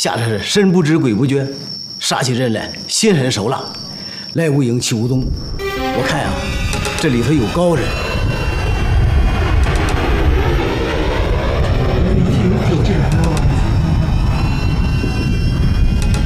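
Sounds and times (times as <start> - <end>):
speech: 0.0 - 8.4
airplane engines roaring overhead: 5.3 - 16.2.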